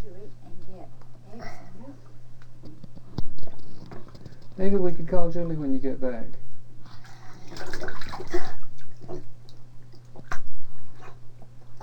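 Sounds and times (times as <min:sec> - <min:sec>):
speech: 0:04.6 - 0:06.4
water sloshing and splashing in a bathtub: 0:06.9 - 0:11.8.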